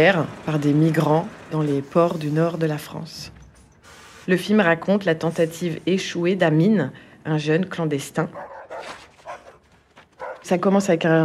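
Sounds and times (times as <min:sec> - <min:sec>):
speech: 0:00.0 - 0:03.4, 0:04.2 - 0:09.0, 0:10.4 - 0:11.2
dogs barking at night: 0:08.3 - 0:10.5.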